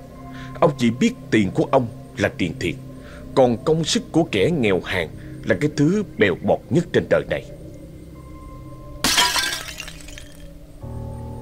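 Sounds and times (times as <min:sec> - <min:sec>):
speech: 0:00.6 - 0:02.8, 0:03.4 - 0:07.6
ceramic tile fragments clattering: 0:09.0 - 0:10.5
white glazed ceramic floor tiles breaking in a kitchen: 0:09.0 - 0:10.6.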